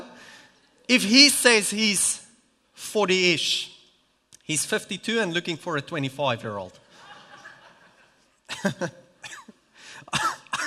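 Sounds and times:
speech: 0:00.9 - 0:02.2, 0:02.8 - 0:03.7, 0:04.5 - 0:06.8, 0:08.6 - 0:09.0
laughter: 0:06.9 - 0:08.9
person coughing harshly: 0:08.5 - 0:10.6.

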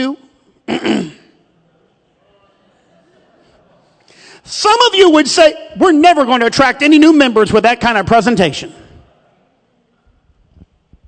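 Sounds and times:
speech: 0:00.0 - 0:00.2, 0:04.6 - 0:08.8
person clearing throat during a church sermon: 0:00.6 - 0:01.5.

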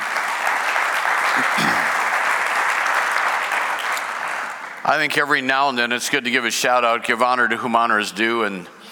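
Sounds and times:
audience clapping: 0:00.0 - 0:05.4
speech: 0:04.8 - 0:08.8.

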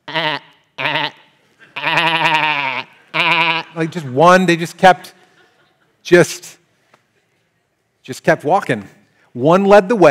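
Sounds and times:
sheep bleating: 0:00.0 - 0:03.8
laughter: 0:03.0 - 0:06.1
speech: 0:03.8 - 0:05.2, 0:06.0 - 0:06.5, 0:08.0 - 0:10.0.

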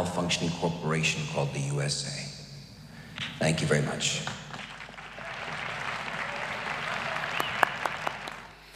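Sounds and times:
speech: 0:00.0 - 0:02.4, 0:03.4 - 0:04.6
audience applause: 0:04.6 - 0:08.6.

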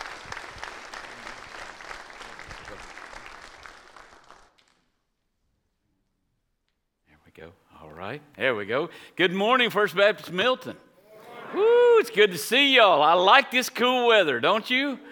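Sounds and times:
audience applause: 0:00.0 - 0:04.9
speech: 0:07.5 - 0:10.8, 0:11.5 - 0:15.1.

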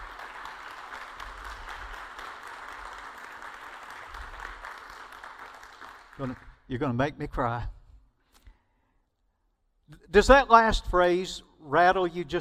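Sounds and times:
large crowd applauding: 0:00.0 - 0:06.7
speech: 0:06.2 - 0:07.8, 0:10.1 - 0:12.4.

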